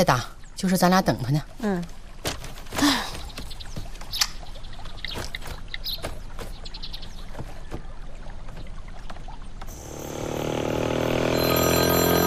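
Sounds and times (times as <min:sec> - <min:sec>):
speech: 0:00.0 - 0:02.0
wash of rushing water or motion noise: 0:00.0 - 0:12.2
scattered splashes: 0:01.5 - 0:10.8
mobile phone ringing: 0:11.2 - 0:12.2.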